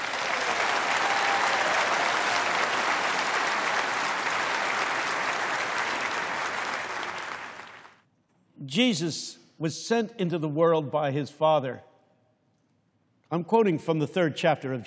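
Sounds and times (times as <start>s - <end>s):
audience applause for a conductor, pianist and organist: 0.0s - 8.0s
speech: 8.7s - 11.9s, 13.3s - 14.8s.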